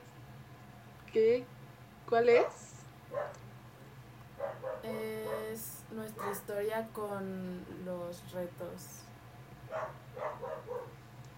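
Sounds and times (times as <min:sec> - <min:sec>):
steady low hum: 0:00.0 - 0:11.3
speech: 0:01.2 - 0:03.4, 0:04.8 - 0:09.1, 0:09.7 - 0:10.8
dog barking: 0:02.4 - 0:03.4, 0:04.4 - 0:05.6, 0:06.2 - 0:06.5, 0:09.7 - 0:11.0.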